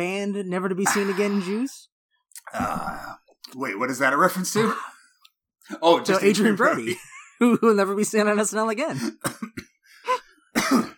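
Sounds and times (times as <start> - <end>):
speech: 0.0 - 1.9, 2.5 - 5.0, 5.6 - 10.9
person coughing: 0.8 - 1.6, 9.0 - 9.8, 10.6 - 10.9.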